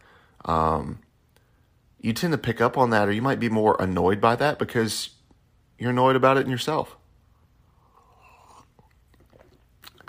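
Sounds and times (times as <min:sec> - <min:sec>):
speech: 0:00.4 - 0:01.0, 0:02.0 - 0:05.2, 0:05.8 - 0:07.0
slurping sip of tea: 0:07.7 - 0:10.0
mouth clicks: 0:07.8 - 0:10.0.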